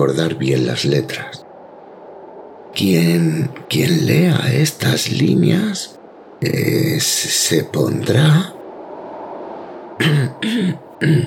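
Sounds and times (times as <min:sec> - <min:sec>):
speech: 0:00.0 - 0:01.4, 0:02.8 - 0:08.6, 0:10.0 - 0:11.2
raspy throat clearing: 0:10.0 - 0:11.2.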